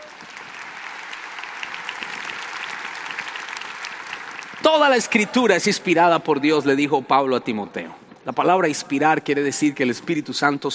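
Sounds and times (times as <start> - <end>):
audience applause for a volunteer: 0.0 - 5.8
speech: 4.6 - 10.7.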